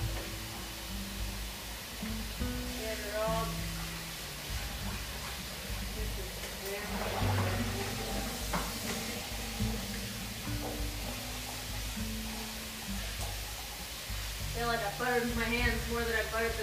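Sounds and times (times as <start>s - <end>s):
tap water running for washing dishes: 0.0s - 16.6s
speech: 14.6s - 16.6s.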